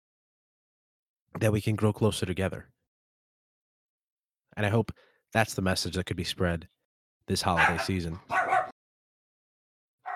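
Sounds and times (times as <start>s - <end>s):
speech: 1.4s - 2.8s, 4.6s - 8.4s
dog barking excitedly: 7.6s - 8.8s.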